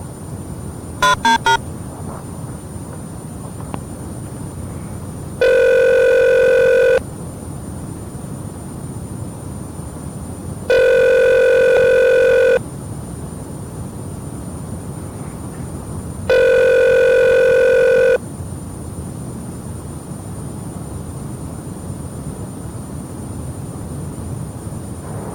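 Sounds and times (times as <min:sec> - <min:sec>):
outgoing telephone call ringback tone: 0:01.0 - 0:01.6, 0:05.4 - 0:07.0, 0:10.7 - 0:12.6, 0:16.3 - 0:18.2.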